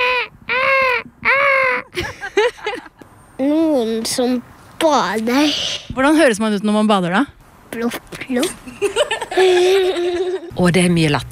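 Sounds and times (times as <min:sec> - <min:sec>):
seagull crying: 0:00.0 - 0:02.0
faint noise: 0:00.0 - 0:11.2
laughter: 0:01.8 - 0:03.0, 0:08.6 - 0:10.5
speech: 0:03.4 - 0:11.2.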